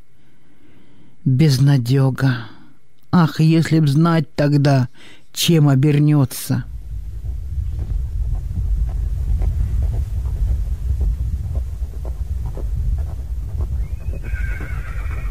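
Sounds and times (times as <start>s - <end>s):
speech: 1.2s - 2.5s, 3.1s - 6.7s
low windy rumble: 6.5s - 15.2s
horse trotting with hoof clops while pulling a sleigh: 7.2s - 15.2s
horse snorting whinny while pulling a sleigh: 14.2s - 15.2s.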